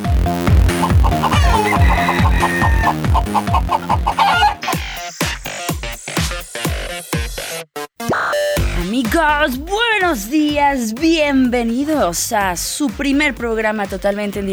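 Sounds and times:
loud upbeat musical backing with a steady pounding beat: 0.0 - 14.5
rooster clucking and crowing: 0.7 - 4.9
speech: 9.5 - 14.5.

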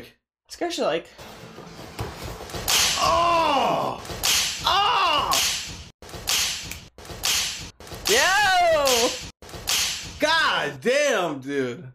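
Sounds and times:
speech: 0.0 - 1.6, 10.5 - 11.9
hard slaps in a replayed video: 2.6 - 3.2, 4.0 - 10.2.

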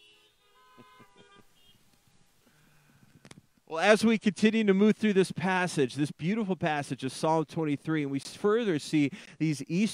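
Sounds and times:
car horns honking: 0.0 - 1.9
speech: 3.7 - 9.9.

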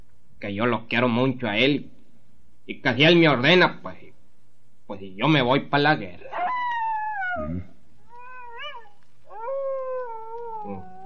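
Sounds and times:
speech: 0.4 - 2.0, 2.7 - 4.1, 4.9 - 6.4
dog howling in long wavering wails: 6.2 - 11.0.

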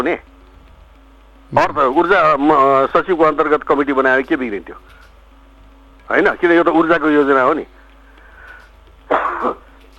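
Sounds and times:
speech: 0.0 - 0.3, 1.5 - 5.0, 6.1 - 7.8, 9.4 - 9.9
person coughing: 9.1 - 9.9.

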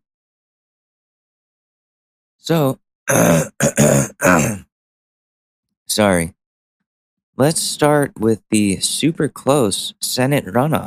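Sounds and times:
speech: 2.4 - 4.7, 5.9 - 6.4, 7.4 - 10.8
person clearing throat: 3.1 - 4.7.

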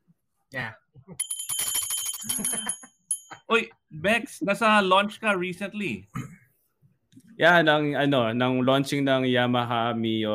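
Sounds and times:
speech: 0.5 - 1.4, 2.2 - 2.9, 3.5 - 6.3, 7.4 - 10.3
bright shrill metallic bell ringing: 1.2 - 3.5.

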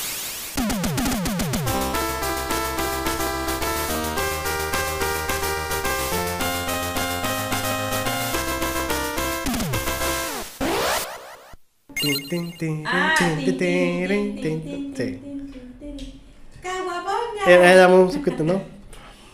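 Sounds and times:
bright bleepy arcade video game theme music: 0.6 - 12.7
speech: 12.3 - 15.2, 17.5 - 18.7.

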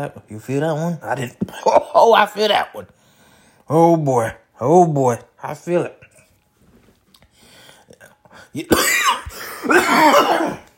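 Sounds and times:
speech: 0.0 - 3.0, 3.7 - 6.0, 8.4 - 10.6
harsh rasping coughs: 8.6 - 10.7
throat clearing: 8.7 - 10.7.

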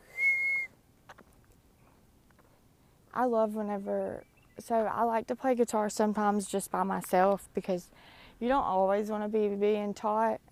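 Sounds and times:
high whistled note made while drawing breath inward: 0.1 - 0.7
speech: 3.2 - 10.4.

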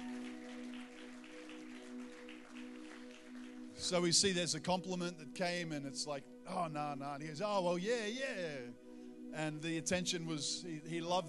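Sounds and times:
audience applause: 0.0 - 3.8
speech: 3.8 - 11.2.

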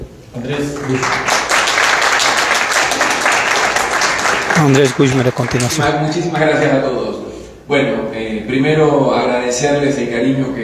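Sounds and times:
speech: 0.4 - 1.5, 4.6 - 10.6
loud sustained applause from a sizable crowd: 0.8 - 5.9.

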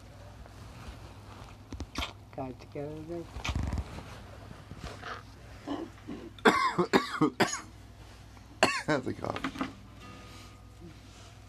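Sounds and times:
speech: 2.4 - 3.7, 6.8 - 7.6, 8.9 - 9.5
person clearing throat: 5.7 - 7.7, 8.6 - 9.0
person coughing harshly: 6.1 - 7.7, 8.6 - 9.0.

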